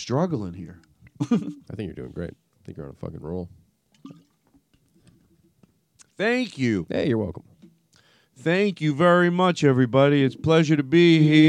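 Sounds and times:
speech: 0.0 - 4.2, 6.2 - 7.5, 8.4 - 11.4
person gulping and swallowing water: 4.0 - 5.6.

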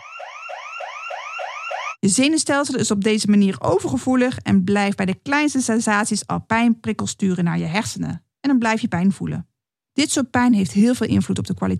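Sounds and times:
electronic alarm whooping: 0.0 - 2.0
speech: 2.0 - 11.7.

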